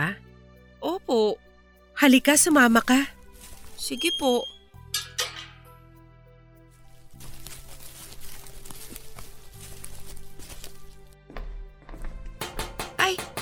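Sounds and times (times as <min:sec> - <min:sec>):
speech: 0:00.9 - 0:01.4, 0:02.0 - 0:03.2, 0:03.8 - 0:04.5
sharp knocks on a gate: 0:12.4 - 0:13.4.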